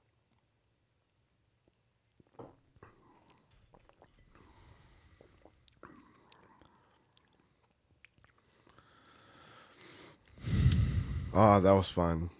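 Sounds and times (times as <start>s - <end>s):
sipping and swallowing beer: 1.6s - 9.2s
soft wet mouth clicks: 3.2s - 4.2s, 5.2s - 9.2s, 10.2s - 10.9s
breaths: 4.2s - 7.4s, 8.4s - 11.5s
speech: 11.4s - 12.3s.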